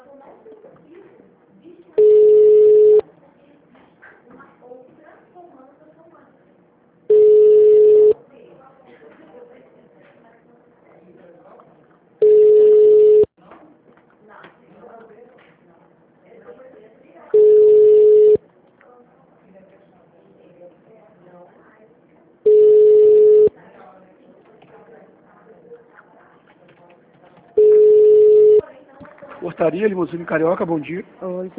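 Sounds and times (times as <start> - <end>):
noise: 0.0 - 31.5
ringback tone from an outgoing telephone call: 2.0 - 3.0, 7.1 - 8.2, 12.2 - 13.3, 17.4 - 18.4, 22.5 - 23.5, 27.6 - 28.6
speech: 29.6 - 31.5.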